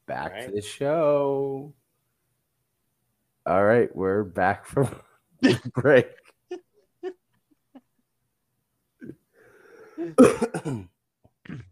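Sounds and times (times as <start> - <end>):
speech: 0.1 - 1.8, 3.4 - 6.2, 10.0 - 10.9
soft throat and breathing noises: 9.0 - 10.2
person coughing: 10.0 - 10.9.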